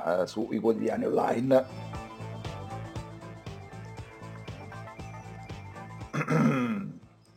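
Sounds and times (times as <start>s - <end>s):
speech: 0.0s - 2.0s, 6.3s - 6.8s
rhythmic music bed: 0.9s - 6.8s
loud rough throat clearing: 6.2s - 7.0s.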